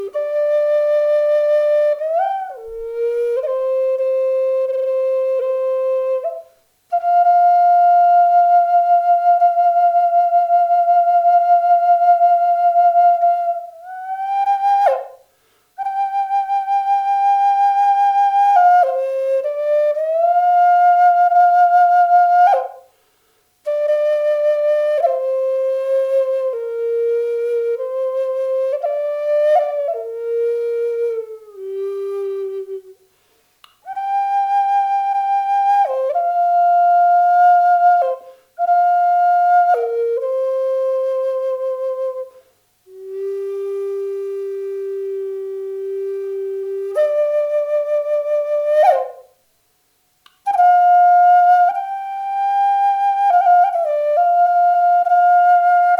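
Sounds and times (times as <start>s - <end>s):
kauri flute in G playing: 0.0s - 22.9s, 23.6s - 33.0s, 33.8s - 49.4s, 50.4s - 55.9s.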